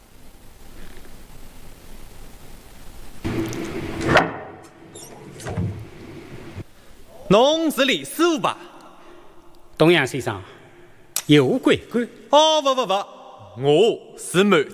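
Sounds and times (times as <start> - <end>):
quiet room hiss: 0.0 - 14.7
door creaking open on a squeaky hinge: 3.3 - 6.3
speech: 7.3 - 8.7, 9.8 - 10.5, 11.3 - 14.7.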